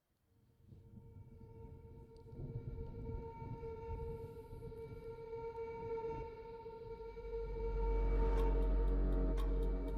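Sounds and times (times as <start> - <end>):
tense droning film trailer score: 1.4 - 9.9
deep rumble: 7.0 - 9.9.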